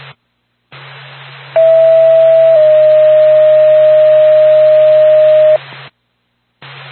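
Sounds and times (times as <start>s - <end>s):
hissy band-limited radio channel noise: 0.0s - 5.9s, 6.6s - 6.9s
ambulance radio dispatch alert tone: 1.6s - 5.6s
low hum on a radio channel: 1.6s - 5.6s.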